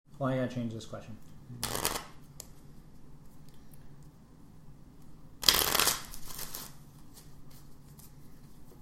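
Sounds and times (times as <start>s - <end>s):
speech: 0.2s - 1.9s
playing cards shuffled for a game of cribbage: 1.6s - 2.6s, 5.4s - 8.8s.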